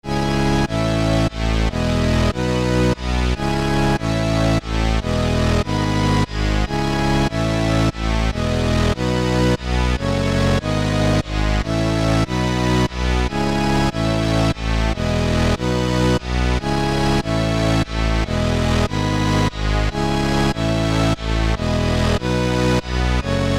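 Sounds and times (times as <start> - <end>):
synthesizer: 0.0 - 23.5.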